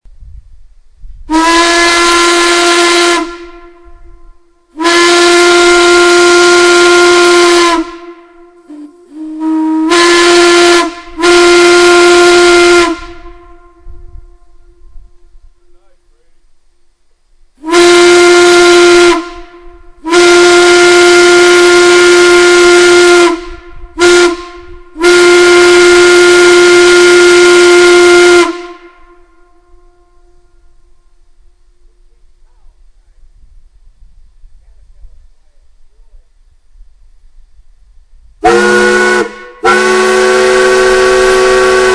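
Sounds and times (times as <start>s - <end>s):
factory steam whistles: 1.2s - 15.6s, 17.6s - 31.9s, 38.4s - 41.9s.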